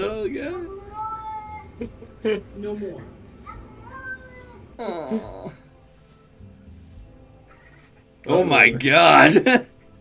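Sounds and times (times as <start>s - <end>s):
cat vocalizing excitedly: 0.7s - 1.9s, 3.4s - 5.4s
speech: 1.8s - 3.2s, 4.8s - 5.6s, 8.2s - 9.7s.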